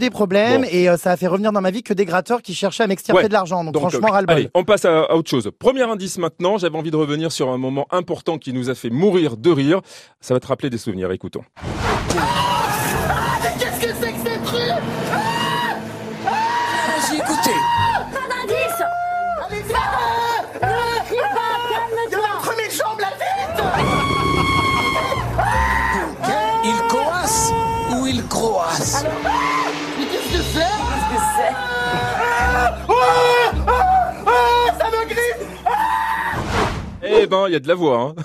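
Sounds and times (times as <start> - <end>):
speech: 0.0 - 15.4, 37.0 - 38.2
person in a bath with mice, rats, toads and grass snakes screaming in panic: 12.1 - 13.8, 15.1 - 22.0, 23.2 - 29.8, 30.7 - 34.9, 35.6 - 36.5
wailing cries: 12.1 - 13.8, 14.7 - 22.4, 23.2 - 29.9, 30.7 - 36.4
laughter: 19.7 - 26.6.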